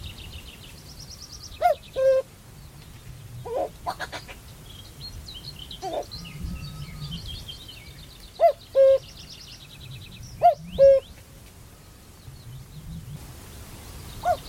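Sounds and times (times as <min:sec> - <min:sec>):
birds singing: 0:00.0 - 0:14.4
male common cuckoo calling on a lowland heath in Staffordshire: 0:01.2 - 0:02.3, 0:03.4 - 0:04.4, 0:05.8 - 0:07.2, 0:08.2 - 0:09.3, 0:10.4 - 0:12.2, 0:14.2 - 0:14.4.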